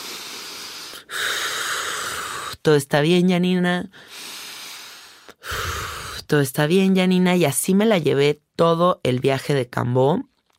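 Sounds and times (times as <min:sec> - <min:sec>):
deep breathing in and out: 0:00.0 - 0:02.6, 0:03.9 - 0:06.3
speech: 0:02.6 - 0:04.2, 0:06.3 - 0:10.3.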